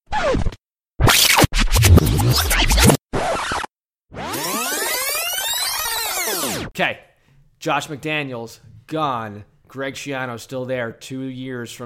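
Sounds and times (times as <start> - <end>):
tape rewind sound effect: 1.1 - 6.7
speech: 6.8 - 11.8.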